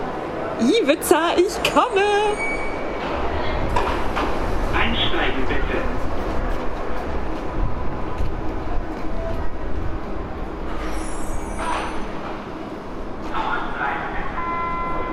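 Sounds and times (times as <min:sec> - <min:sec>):
subway train rumbling with rattling: 0:00.0 - 0:15.1
speech: 0:00.6 - 0:02.6, 0:05.1 - 0:06.1
high metallic squeal of subway train: 0:02.2 - 0:03.0, 0:10.8 - 0:12.1.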